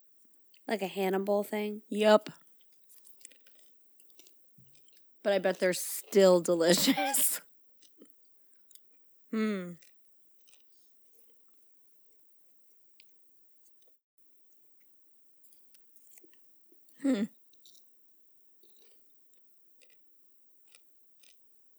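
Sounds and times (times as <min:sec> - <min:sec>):
speech: 0:00.7 - 0:02.4, 0:05.2 - 0:07.5, 0:09.3 - 0:09.9, 0:17.0 - 0:17.4
person chewing popcorn: 0:02.5 - 0:05.5, 0:07.8 - 0:11.6, 0:18.6 - 0:21.7.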